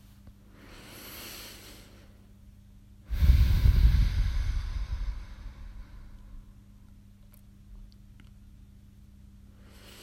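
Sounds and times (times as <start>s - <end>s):
deep breath during a relaxation exercise: 0.5s - 2.3s, 3.1s - 6.8s, 9.5s - 10.0s.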